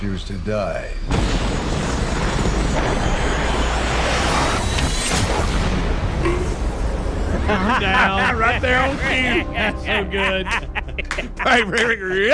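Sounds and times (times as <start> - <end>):
speech: 0.0 - 3.4, 7.5 - 10.7, 11.4 - 12.3
jet aircraft flying over: 1.1 - 10.4
laughter: 7.2 - 12.3.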